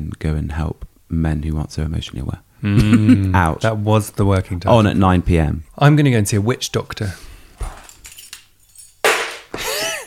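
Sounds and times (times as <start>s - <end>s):
speech: 0.0s - 7.3s
metallic keys jangling: 7.8s - 9.0s.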